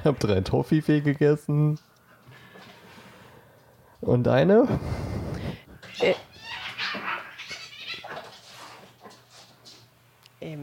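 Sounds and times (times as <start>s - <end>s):
speech: 0.0s - 1.9s, 4.0s - 5.0s, 6.0s - 6.2s
faint steady hum: 0.0s - 10.6s
two pet cats yowling and hissing in a fight: 5.8s - 9.0s.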